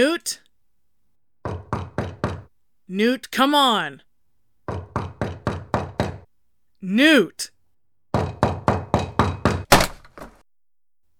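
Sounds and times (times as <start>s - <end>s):
speech: 0.0s - 0.4s, 2.9s - 4.1s, 6.8s - 7.6s
knocks: 1.4s - 2.5s, 4.6s - 6.3s, 8.1s - 10.3s
splintering crash of something smashing a hole through a door: 9.7s - 10.4s.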